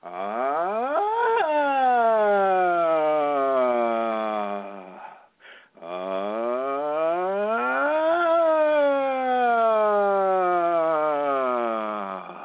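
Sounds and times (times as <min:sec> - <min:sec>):
single voice toning in a rising and falling siren-like sweep: 0:00.0 - 0:05.0, 0:05.9 - 0:11.8.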